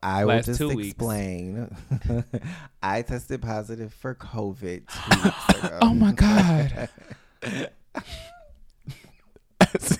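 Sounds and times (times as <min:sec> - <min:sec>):
speech: 0:00.0 - 0:08.3
person coughing: 0:04.9 - 0:08.4, 0:09.6 - 0:09.9.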